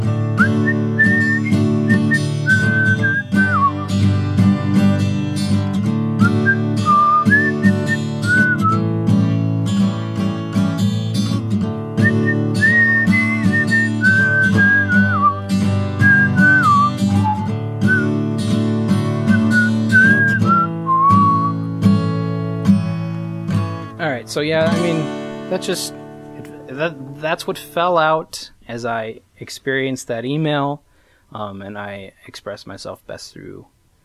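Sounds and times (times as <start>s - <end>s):
steady low instrumental backing: 0.0s - 28.3s
person whistling a sliding tuneful melody: 0.4s - 4.0s, 6.2s - 8.9s, 12.0s - 18.2s, 19.3s - 21.6s
speech: 24.4s - 26.0s, 26.8s - 33.7s.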